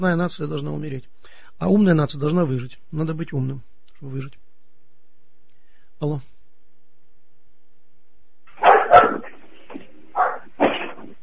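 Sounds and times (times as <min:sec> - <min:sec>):
speech: 0:00.0 - 0:04.4, 0:06.0 - 0:06.3
dog barking: 0:08.5 - 0:09.5, 0:10.1 - 0:11.1.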